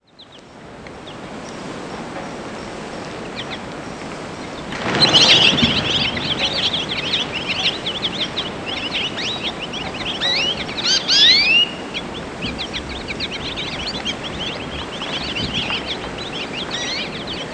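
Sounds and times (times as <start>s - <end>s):
low steady background hiss: 0.0s - 17.5s
American goldfinch song: 4.3s - 17.5s.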